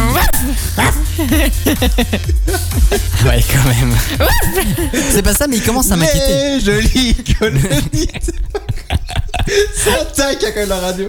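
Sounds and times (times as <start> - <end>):
person imitating a dog barking: 0.0 - 2.0, 4.2 - 4.8
laughter: 0.0 - 11.0
speech: 1.2 - 11.0.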